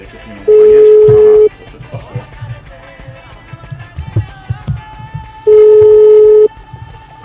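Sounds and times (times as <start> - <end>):
speech: 0.0 - 0.8
telephone ringing with an incoming call in a studio: 0.5 - 1.5, 5.5 - 6.6.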